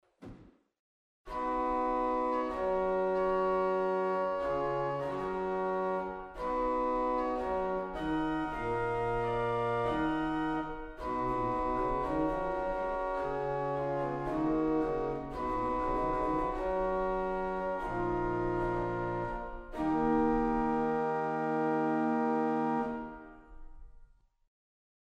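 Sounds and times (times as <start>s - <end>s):
organ Viol Gambe 8 stop playing: 1.5s - 23.3s.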